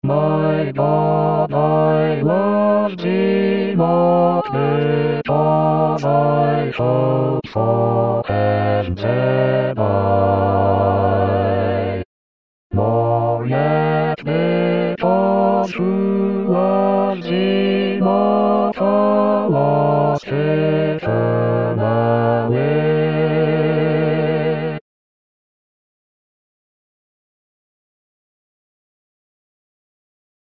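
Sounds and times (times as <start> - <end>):
hymn bass part: 0.0 - 12.0, 12.7 - 24.8.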